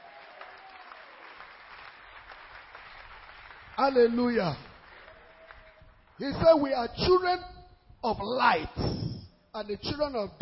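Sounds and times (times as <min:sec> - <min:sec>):
audience clapping hands: 0:00.0 - 0:06.7
speech: 0:03.8 - 0:04.7, 0:06.2 - 0:10.4.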